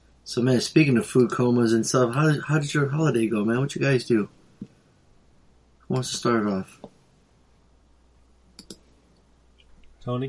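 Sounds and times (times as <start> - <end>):
speech: 0.3 - 4.7, 5.9 - 6.9, 10.0 - 10.2
soft keyboard keystrokes clicking: 8.6 - 8.8.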